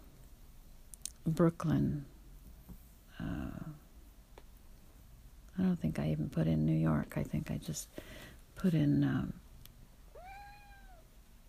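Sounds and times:
low hiss: 0.0s - 11.4s
speech: 1.2s - 2.1s, 5.6s - 9.4s
cat meowing: 10.1s - 11.1s.

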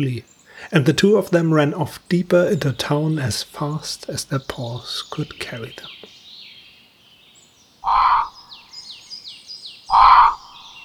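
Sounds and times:
speech: 0.0s - 6.1s
smaller birds chirping and tweeting: 0.0s - 10.8s
crow squawking: 7.8s - 8.7s, 9.9s - 10.8s.

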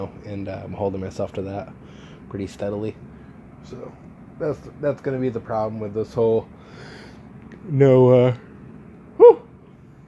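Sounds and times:
speech: 0.0s - 7.0s, 7.7s - 8.4s
quiet hum: 0.0s - 10.0s
person yawning with a voiced groan: 9.2s - 9.5s.

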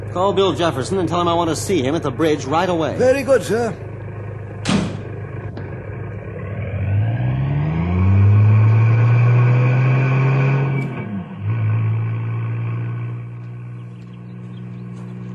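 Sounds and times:
car engine starting, revving and pulling away: 0.0s - 15.3s
speech: 0.2s - 3.9s
car door thumping shut: 4.6s - 5.1s.

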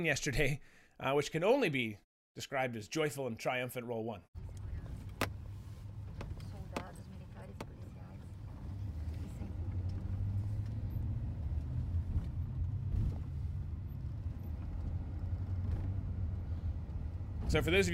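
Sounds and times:
speech: 0.0s - 4.6s, 17.5s - 17.9s
motorcade of vehicles driving by on a street: 4.4s - 17.9s.

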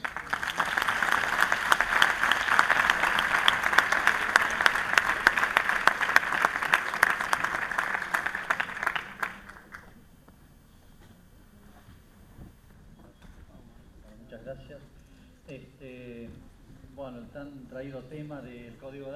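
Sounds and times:
audience applause welcoming a speaker: 0.0s - 9.9s.

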